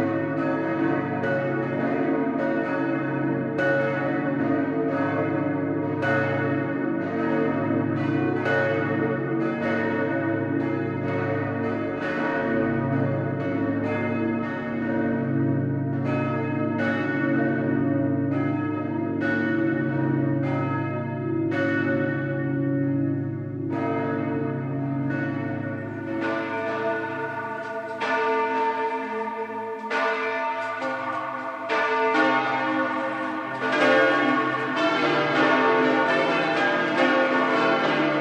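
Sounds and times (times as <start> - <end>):
four large harmonically tuned church bells pealing in Auerbach: 0.0 - 38.2.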